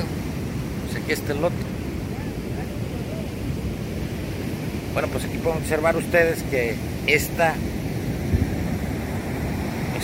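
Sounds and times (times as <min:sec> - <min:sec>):
ocean surf washing over a sandbar into a lagoon: 0:00.0 - 0:10.0
wind buffeting the microphone: 0:00.0 - 0:10.0
speech: 0:01.1 - 0:01.8, 0:05.0 - 0:07.8.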